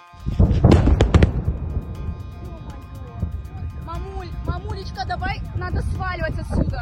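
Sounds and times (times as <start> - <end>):
explosive booms at an airfield: 0.2 - 6.7
rolling rumble: 0.2 - 6.7.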